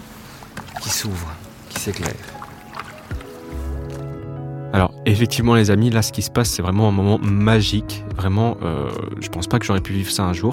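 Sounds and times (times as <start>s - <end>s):
oars dipping and splashing into calm lake water: 0.1s - 4.2s
speech: 0.8s - 2.4s, 4.7s - 10.5s.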